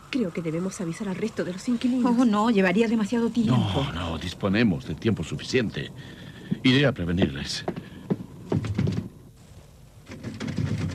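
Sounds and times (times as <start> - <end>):
speech: 0.1 - 7.9
locked door being tried and rattled: 10.0 - 10.9.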